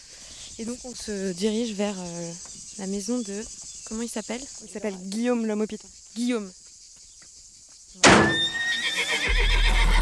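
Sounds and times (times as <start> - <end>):
speech: 0.6 - 6.6
horse whinnying in a paddock: 8.2 - 10.0.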